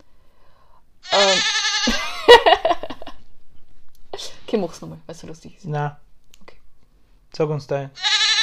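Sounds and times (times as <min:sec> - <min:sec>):
goat bleating: 0:01.0 - 0:02.0, 0:08.0 - 0:08.4
laughter: 0:01.8 - 0:03.2
speech: 0:04.6 - 0:06.1, 0:07.4 - 0:08.0.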